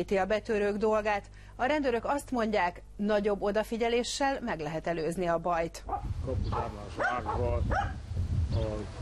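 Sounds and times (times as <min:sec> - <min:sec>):
speech: 0:00.0 - 0:09.0
dogs barking sharply: 0:05.9 - 0:08.0.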